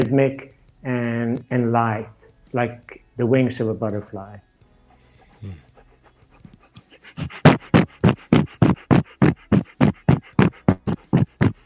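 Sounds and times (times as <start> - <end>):
speech: 0.0 - 4.5, 5.4 - 5.6
person panting quickly as a breathing exercise: 4.9 - 11.6.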